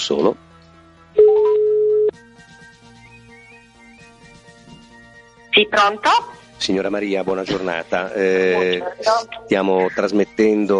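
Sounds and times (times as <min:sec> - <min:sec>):
speech: 0:00.0 - 0:00.4, 0:05.6 - 0:10.7
telephone ringback tone as a call is placed: 0:01.2 - 0:02.2.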